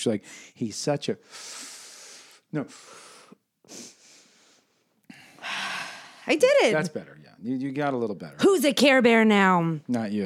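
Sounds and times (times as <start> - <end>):
speech: 0.0 - 1.7, 2.5 - 3.1, 3.7 - 4.0, 6.3 - 10.2
person inhaling smoke: 1.3 - 5.9.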